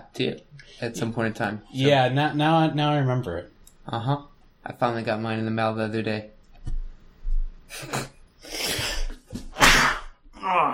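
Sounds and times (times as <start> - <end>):
speech: 0.1 - 6.8, 7.7 - 8.6
noisy inhales: 7.7 - 9.2
sharp forceful sneezes: 7.7 - 10.2.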